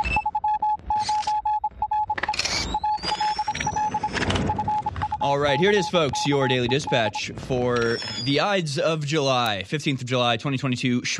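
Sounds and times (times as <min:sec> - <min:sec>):
brief rising whistle: 0:00.0 - 0:08.4
steady electronic tone beeping in short bursts: 0:00.0 - 0:08.6
static crackles: 0:00.0 - 0:10.0
speech: 0:05.2 - 0:11.1.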